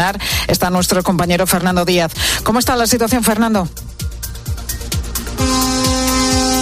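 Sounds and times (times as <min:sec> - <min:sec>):
speech: 0:00.0 - 0:04.0
rumbling traffic noise on a motorway: 0:04.2 - 0:06.6
truck air horn blasting on a motorway: 0:05.3 - 0:06.6.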